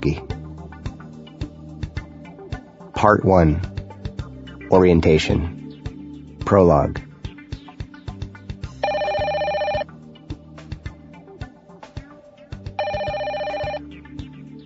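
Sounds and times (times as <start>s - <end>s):
speech: 0.0s - 0.3s, 3.0s - 3.7s, 4.7s - 5.6s, 6.5s - 7.1s
steady thumping rhythmic background: 0.0s - 14.6s
telephone ringing with bright buzzing electronic tone: 8.8s - 9.9s, 12.8s - 13.8s.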